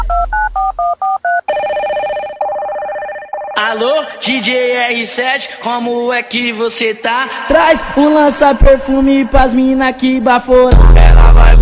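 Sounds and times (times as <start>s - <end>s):
steady continuous telephone line tone: 0.0s - 3.8s
speech: 3.6s - 11.6s.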